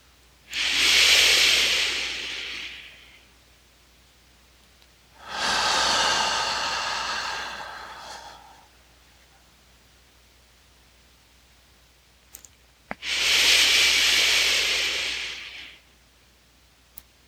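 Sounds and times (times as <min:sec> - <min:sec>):
deep breathing during meditation: 0:00.5 - 0:03.3, 0:05.2 - 0:09.3, 0:13.0 - 0:15.8.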